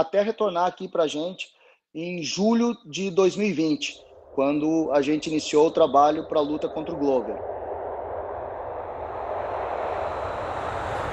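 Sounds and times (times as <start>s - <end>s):
speech: 0.0s - 7.5s
jet airplane roaring past: 3.8s - 11.1s.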